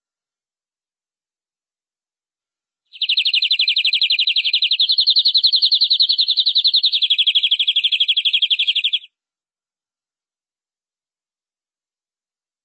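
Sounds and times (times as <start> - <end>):
canary trilling: 2.9 - 9.1.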